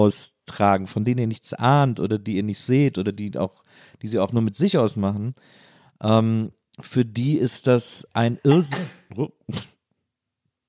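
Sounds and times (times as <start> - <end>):
speech: 0.0 - 9.7
faint breathy sound: 5.4 - 6.0
sneeze: 8.5 - 9.7.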